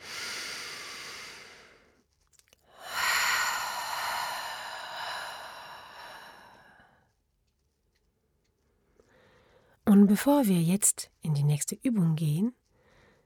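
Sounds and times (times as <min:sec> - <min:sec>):
person breathing out during a relaxation breathing exercise: 0:00.0 - 0:01.9, 0:02.7 - 0:06.9
speech: 0:10.0 - 0:12.6.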